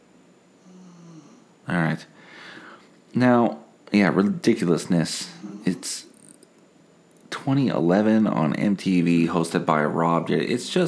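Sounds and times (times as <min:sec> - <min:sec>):
low droning snore: 0:00.6 - 0:01.5, 0:05.2 - 0:05.9
speech: 0:01.7 - 0:02.2, 0:03.1 - 0:06.1, 0:07.4 - 0:10.8.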